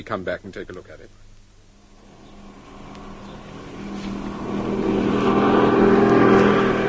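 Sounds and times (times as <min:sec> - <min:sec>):
speech: 0:00.0 - 0:01.3
car engine humming: 0:01.5 - 0:06.8.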